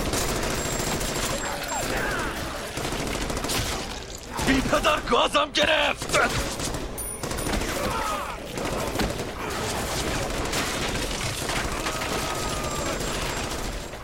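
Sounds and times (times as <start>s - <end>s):
sustained barrage of rapid gunfire: 0.0s - 5.1s, 5.9s - 14.0s
speech: 4.5s - 6.6s.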